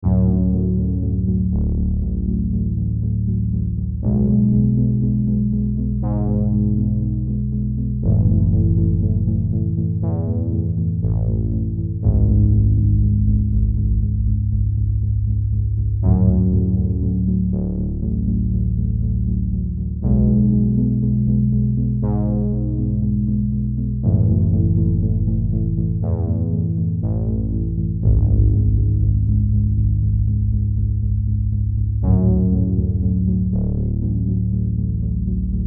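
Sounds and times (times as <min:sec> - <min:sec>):
dreamy sequence: 0:00.0 - 0:35.6.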